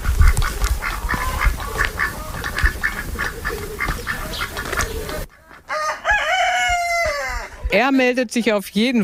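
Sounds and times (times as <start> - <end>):
ducks quacking in a poultry yard: 0.0 - 5.7
chickens clucking in a poultry yard: 0.0 - 7.8
rooster crowing: 5.7 - 7.7
speech: 7.8 - 9.0.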